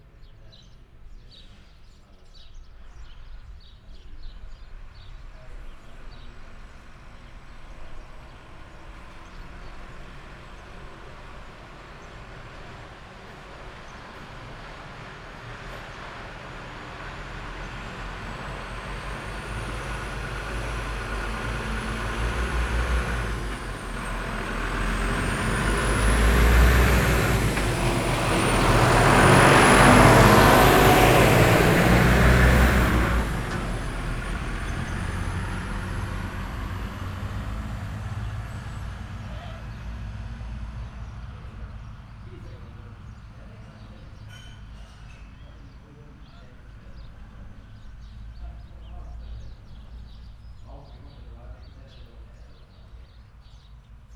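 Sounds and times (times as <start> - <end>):
truck loaded full with bales: 0.0 - 54.1.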